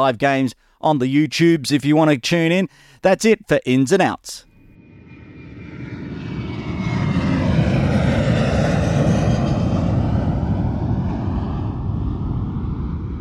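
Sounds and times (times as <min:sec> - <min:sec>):
speech: 0:00.0 - 0:04.5
aeroplane roaring overhead: 0:04.6 - 0:13.1.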